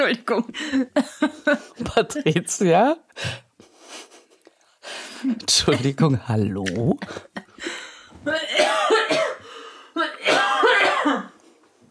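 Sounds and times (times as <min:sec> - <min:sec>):
speech: 0:00.0 - 0:03.4, 0:04.9 - 0:09.2
person coughing after alcohol went down the wrong pipe: 0:08.3 - 0:09.4, 0:10.2 - 0:11.4.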